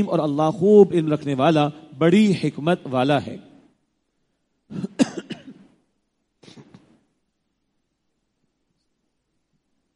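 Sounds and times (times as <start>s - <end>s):
speech: 0.0s - 3.5s
harsh coughing: 4.7s - 5.7s.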